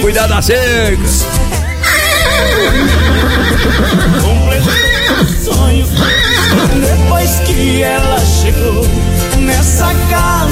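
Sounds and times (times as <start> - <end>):
speech: 0.1 - 1.7, 2.3 - 10.5
horse whinnying with quavering pitch-sliding neighs: 1.6 - 6.9.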